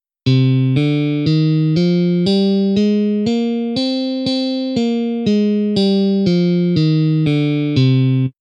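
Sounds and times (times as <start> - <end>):
electric guitar playing an Aeolian scale: 0.2 - 8.3.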